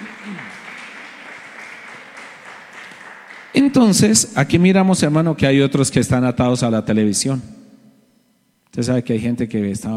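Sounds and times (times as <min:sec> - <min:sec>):
crowd applauding: 0:00.0 - 0:04.2
speech: 0:03.6 - 0:07.6, 0:08.8 - 0:09.9.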